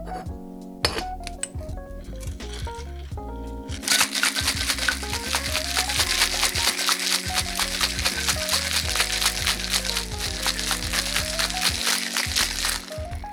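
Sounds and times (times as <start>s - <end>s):
soft music: 0.0s - 13.3s
ice rattling in a cocktail shaker with Chambord and pineapple juice: 3.8s - 13.0s.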